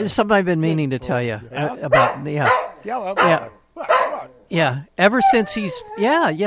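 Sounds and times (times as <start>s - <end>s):
speech: 0.0s - 6.4s
dog barking and yowling: 1.9s - 4.5s, 5.1s - 6.3s.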